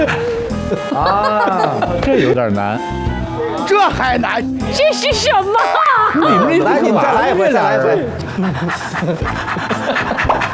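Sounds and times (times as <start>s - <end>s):
laughter: 0.0s - 2.6s, 5.6s - 10.5s
speech: 0.0s - 10.2s
person imitating a panting dog during a charades-style guessing game: 8.2s - 10.5s.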